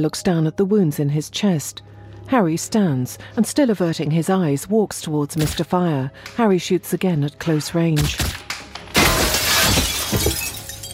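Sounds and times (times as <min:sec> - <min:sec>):
speech: 0:00.0 - 0:08.4
debris breaking: 0:08.0 - 0:10.9
body crashing through a coffee table: 0:09.0 - 0:10.9.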